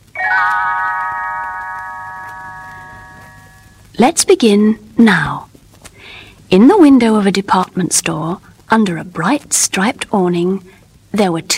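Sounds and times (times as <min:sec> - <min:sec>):
little bells chiming: 0:00.2 - 0:03.8
speech: 0:04.0 - 0:05.5, 0:06.5 - 0:11.5.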